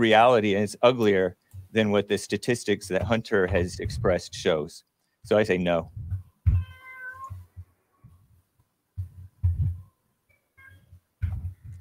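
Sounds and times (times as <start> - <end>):
speech: 0.0 - 6.1
low thumps: 2.8 - 4.6, 5.3 - 6.7, 9.0 - 9.9, 11.2 - 11.7
cat meowing in the background: 6.5 - 8.2.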